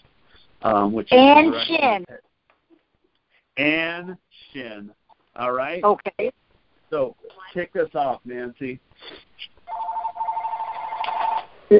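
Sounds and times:
speech: 0.6s - 2.2s, 3.6s - 9.5s
telephone ringing with a warbling electronic tone: 9.7s - 11.5s.

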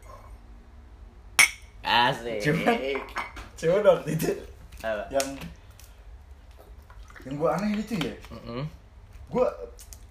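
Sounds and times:
drinking glasses clinking in a toast: 1.4s - 1.7s
speech: 1.9s - 5.6s, 7.2s - 10.0s.

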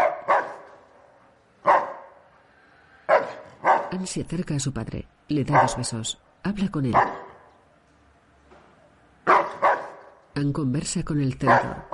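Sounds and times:
dog barking behind a door inside a house: 0.0s - 0.9s, 1.6s - 2.3s, 3.1s - 4.0s, 5.5s - 5.9s, 6.9s - 7.5s, 9.2s - 10.2s, 11.4s - 11.9s
speech: 3.9s - 7.3s, 10.4s - 11.9s.

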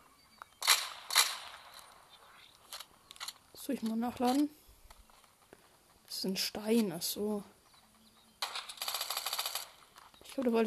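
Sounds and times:
video game gunshots: 0.6s - 2.1s, 8.4s - 9.9s
speech: 3.7s - 4.6s, 6.2s - 7.6s, 10.4s - 10.6s.

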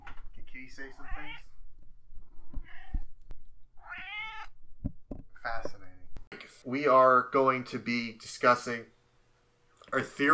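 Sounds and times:
speech: 0.6s - 1.5s, 6.6s - 9.0s, 9.9s - 10.3s
cat meowing: 1.0s - 1.5s, 2.6s - 3.1s, 3.8s - 4.6s.

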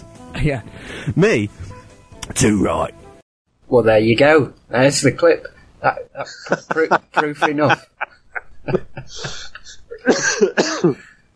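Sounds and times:
speech: 0.4s - 3.0s, 3.7s - 8.0s, 8.7s - 11.1s
laughter: 5.8s - 10.6s
person coughing and choking after tea went down the wrong way: 8.9s - 11.1s.

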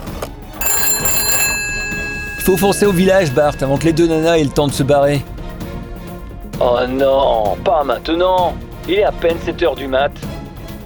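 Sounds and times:
telephone ringing with a bright sustained trill: 0.6s - 5.3s
speech: 2.4s - 5.3s, 6.6s - 10.3s.

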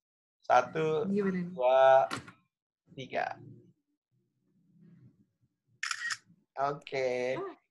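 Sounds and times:
speech: 0.5s - 3.6s, 6.6s - 7.6s
camera shutter click from a print-screen screenshot: 5.8s - 6.2s.

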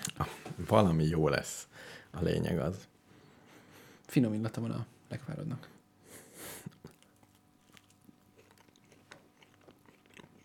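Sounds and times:
speech: 0.7s - 2.9s, 4.1s - 5.7s
person biting and chewing food: 6.6s - 10.4s.

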